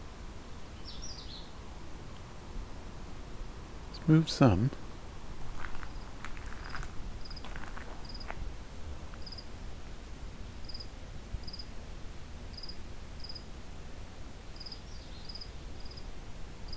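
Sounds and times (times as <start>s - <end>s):
steady hiss: 0.0s - 16.7s
speech: 4.0s - 4.8s
rustling or footstep-like sounds: 5.4s - 9.3s
cricket chirping: 5.8s - 8.4s, 9.2s - 9.5s, 10.6s - 11.7s, 12.6s - 13.4s, 14.6s - 16.0s.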